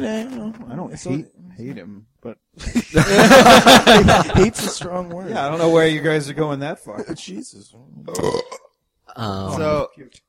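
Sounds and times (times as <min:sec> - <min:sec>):
speech: 0:00.0 - 0:08.6, 0:09.2 - 0:10.2
laughter: 0:02.6 - 0:05.2
short guttural croak: 0:08.0 - 0:09.5
long loud rumbling burp into the microphone: 0:08.0 - 0:09.9.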